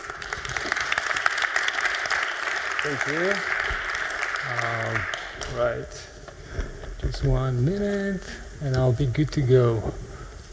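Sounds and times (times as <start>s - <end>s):
audience at a hacking conference applauding: 0.0s - 6.2s
speech: 2.8s - 3.8s, 4.4s - 6.1s, 7.0s - 10.1s.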